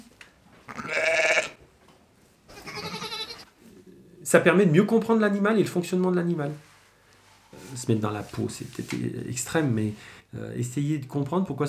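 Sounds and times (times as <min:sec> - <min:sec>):
ewe bleating: 0:00.7 - 0:01.6, 0:02.5 - 0:03.5
speech: 0:04.3 - 0:06.7, 0:07.8 - 0:11.6.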